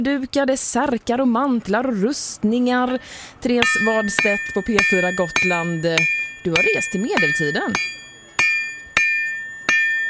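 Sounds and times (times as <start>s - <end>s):
speech: 0.0s - 8.0s
blacksmith hammering metal at a medieval market: 3.6s - 10.0s.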